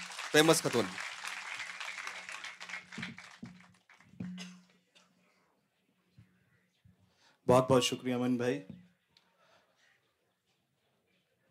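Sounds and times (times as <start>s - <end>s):
audience applause welcoming a poet: 0.0s - 4.0s
speech: 0.3s - 1.1s, 7.5s - 8.8s.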